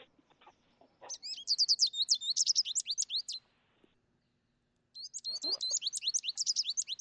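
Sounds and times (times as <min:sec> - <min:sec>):
American goldfinch calling in high twittering bursts: 0:01.1 - 0:03.4, 0:05.0 - 0:06.9.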